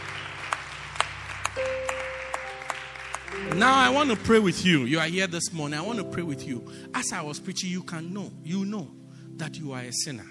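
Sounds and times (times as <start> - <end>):
audience clapping in a steady rhythm: 0.0 - 4.9
speech: 3.4 - 10.2.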